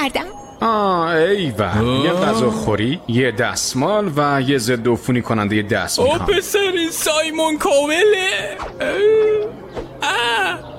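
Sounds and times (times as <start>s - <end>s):
speech: 0.0s - 10.7s
person crying out in wavering wails: 1.7s - 2.7s, 8.0s - 10.6s.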